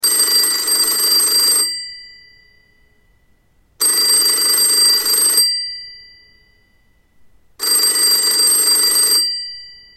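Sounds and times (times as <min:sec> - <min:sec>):
vintage phone ringtone: 0:00.0 - 0:02.6, 0:03.8 - 0:06.6, 0:07.6 - 0:09.9.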